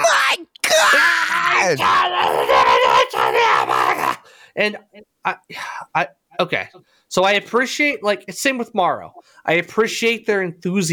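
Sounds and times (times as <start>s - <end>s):
person imitating a high-pitched wailing shriek: 0.0s - 4.3s
speech: 1.6s - 4.0s, 4.6s - 10.9s.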